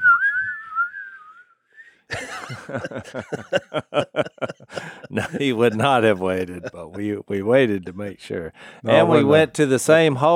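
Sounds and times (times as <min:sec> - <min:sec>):
wavering whistle: 0:00.0 - 0:02.0
people laughing: 0:02.1 - 0:07.5
speech: 0:02.1 - 0:10.3.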